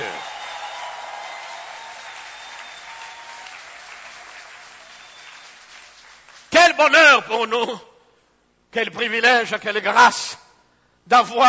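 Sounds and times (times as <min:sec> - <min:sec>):
congregation applauding: 0:00.0 - 0:06.9
speech: 0:06.8 - 0:07.9, 0:08.7 - 0:10.4, 0:11.1 - 0:11.4.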